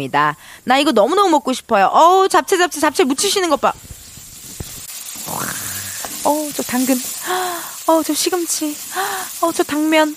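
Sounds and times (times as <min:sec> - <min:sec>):
speech: 0:00.0 - 0:03.8, 0:06.2 - 0:10.1
japchae noodles sizzling as they stir-fry in a hot pan: 0:00.7 - 0:10.1
brief voice-like rising tone: 0:05.2 - 0:06.1.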